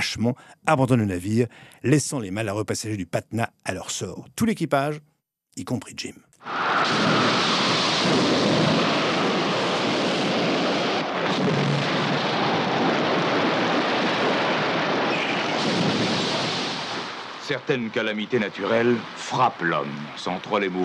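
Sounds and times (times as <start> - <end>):
speech: 0.0 - 9.0, 17.5 - 20.8
dense rain hiss: 6.4 - 20.8
deep rumbles of thunder: 6.5 - 20.8.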